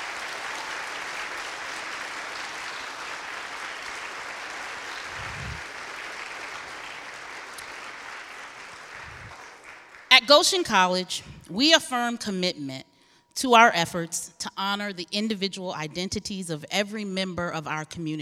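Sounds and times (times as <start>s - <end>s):
large audience applauding: 0.0s - 10.1s
speech: 10.2s - 18.1s.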